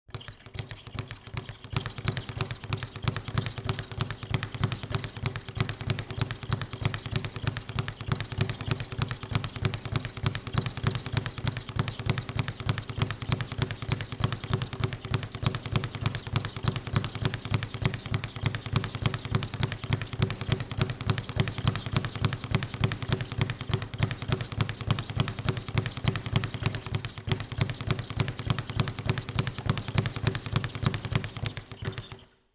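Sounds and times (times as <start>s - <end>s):
boxing gymnasium ambience: 0.1s - 32.4s.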